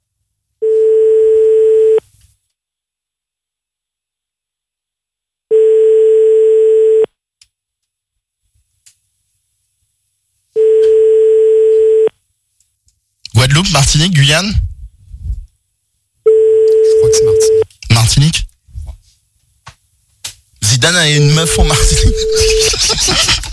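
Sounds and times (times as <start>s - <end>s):
telephone line tones while a phone number is dialed: 0.6s - 2.0s, 5.5s - 7.1s, 10.6s - 12.1s, 16.3s - 17.6s, 21.5s - 22.7s
speech: 13.6s - 14.7s, 20.9s - 23.4s
laughter: 21.5s - 23.5s.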